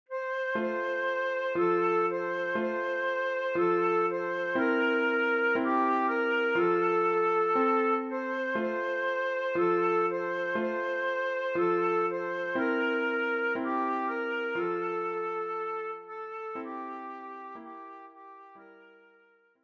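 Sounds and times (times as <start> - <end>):
transverse flute playing a Christmas carol: 0.1 - 19.4.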